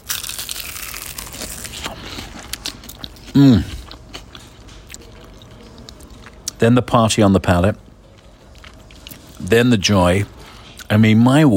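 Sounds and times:
crunchy bite into a crispy fried chicken wing: 0.0s - 4.3s
speech: 3.4s - 3.7s, 6.6s - 7.8s, 9.5s - 11.5s.

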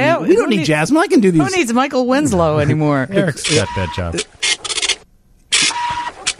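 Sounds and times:
speech: 0.3s - 4.6s
voice imitating a dot matrix printer: 3.2s - 4.3s.

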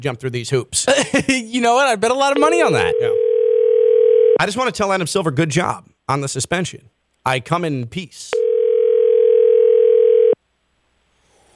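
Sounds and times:
speech: 0.0s - 3.2s, 4.4s - 8.4s
telephone dial tone during a call: 2.9s - 4.4s, 8.4s - 10.4s.

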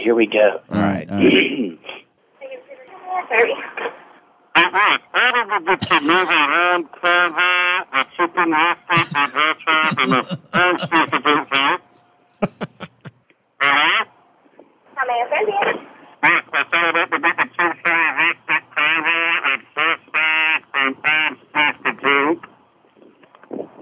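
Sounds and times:
speech: 0.0s - 2.0s, 3.3s - 4.0s, 4.7s - 11.8s, 12.4s - 12.9s, 13.6s - 14.1s, 15.0s - 19.6s, 20.8s - 22.5s
laughter: 5.8s - 6.5s, 8.9s - 11.6s, 12.4s - 13.1s
voice buzzing through a kazoo: 5.8s - 6.5s, 9.0s - 11.1s.

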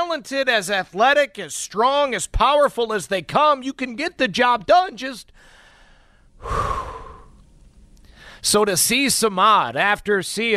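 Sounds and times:
speech: 0.2s - 5.5s, 6.4s - 6.8s, 8.4s - 10.5s
baseball batter taking a big deep breath: 5.4s - 8.4s.

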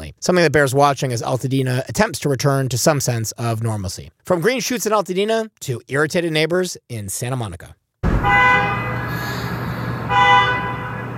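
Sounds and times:
speech: 0.2s - 8.6s
car horn blasts: 8.0s - 11.1s.

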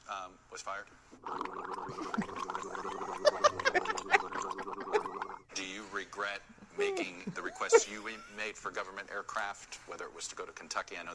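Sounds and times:
speech: 0.3s - 4.9s, 6.1s - 11.1s
gargling bubbling throat sounds replacing a man's speech in a TV interview: 1.2s - 5.8s
laughter: 1.9s - 5.8s, 6.8s - 8.9s.

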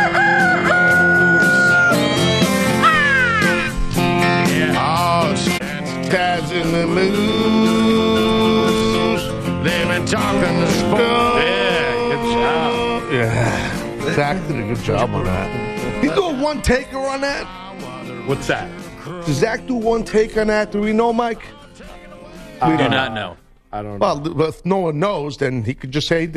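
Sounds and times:
rooster crowing: 0.0s - 3.6s
dense busy musical backing: 0.0s - 26.3s
speech: 13.5s - 21.6s, 22.6s - 26.3s.

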